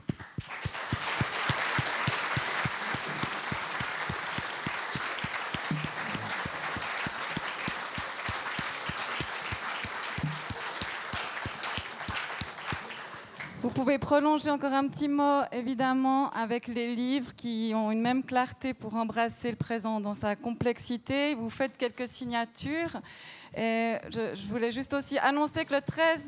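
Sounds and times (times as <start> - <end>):
audience applause: 0.0 - 13.6
speech: 13.8 - 26.2.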